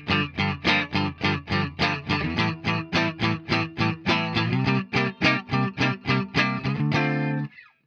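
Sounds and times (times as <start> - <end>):
clean Fender Jazzmaster Classic Player electric guitar: 0.0 - 7.8.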